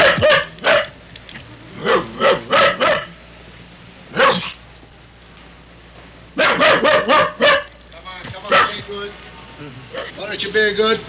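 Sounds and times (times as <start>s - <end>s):
dog barking locked in a car: 0.0s - 0.9s, 1.8s - 3.1s, 4.1s - 4.6s, 6.4s - 7.7s, 8.5s - 8.9s, 9.9s - 10.2s
man talking: 8.0s - 11.0s.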